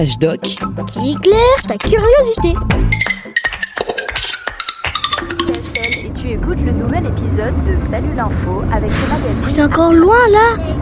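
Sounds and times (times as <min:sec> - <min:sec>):
speech: 0:00.0 - 0:03.3, 0:06.3 - 0:10.8
bright clinking tones: 0:02.9 - 0:06.1
slow tractor engine rumbling on narrow road: 0:02.9 - 0:10.8.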